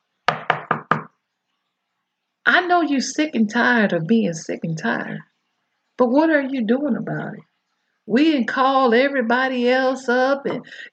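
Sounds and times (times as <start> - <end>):
firm knocking on a door: 0.3 - 1.1
speech: 2.5 - 5.3, 6.0 - 7.5, 8.1 - 10.9.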